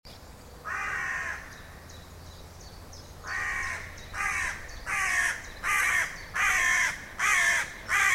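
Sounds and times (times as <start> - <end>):
Carrion crow Corvus corone giving harsh rasping caws: 0.6 - 1.5, 3.2 - 8.1.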